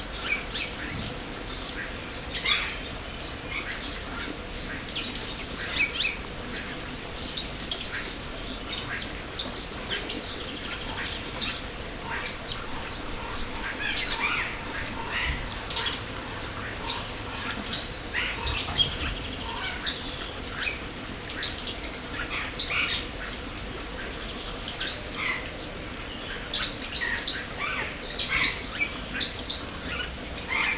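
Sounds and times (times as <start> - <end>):
birds in an aviary chirping and tweeting: 0.0 - 30.7.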